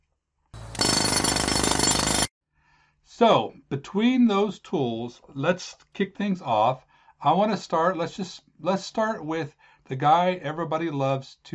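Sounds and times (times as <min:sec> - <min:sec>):
loud jackhammer pounding: 0:00.6 - 0:02.3
speech: 0:03.1 - 0:11.5.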